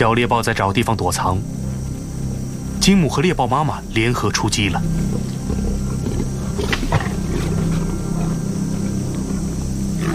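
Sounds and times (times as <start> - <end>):
speech: 0.0 - 1.7, 2.8 - 5.7
lion roaring in the wild: 5.0 - 10.1.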